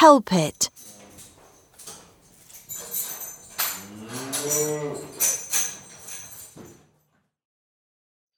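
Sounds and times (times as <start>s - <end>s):
speech: 0.0s - 0.8s, 4.4s - 5.4s
cow mooing: 3.8s - 5.1s.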